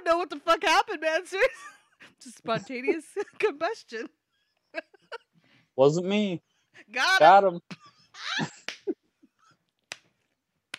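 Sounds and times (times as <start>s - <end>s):
speech: 0.1s - 5.2s, 5.8s - 8.6s
man's penis slapping against his leg: 8.6s - 8.9s, 9.8s - 10.7s.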